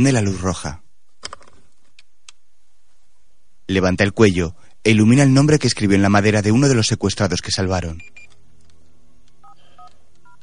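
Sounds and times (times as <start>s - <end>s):
speech: 0.0s - 0.8s, 3.7s - 8.2s
steady low hiss: 0.0s - 10.4s
mobile phone dual-tone keypad beeps dialing a number: 9.4s - 10.4s.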